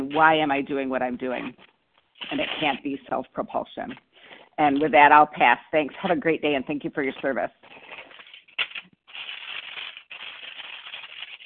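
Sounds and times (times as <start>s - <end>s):
speech: 0.1s - 7.8s
papers rustling and crinkling: 1.4s - 2.9s, 7.6s - 11.4s.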